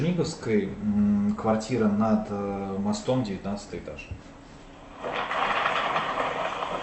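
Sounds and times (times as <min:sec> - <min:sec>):
speech: 0:00.0 - 0:04.4
train railroad cars rolling past: 0:05.0 - 0:06.8.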